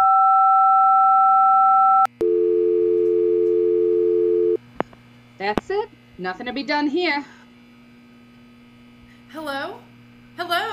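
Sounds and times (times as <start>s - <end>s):
conference phone dial tone in a windowless office conference room: 0.0s - 4.6s
speech: 5.4s - 7.4s, 9.3s - 9.8s, 10.4s - 10.7s.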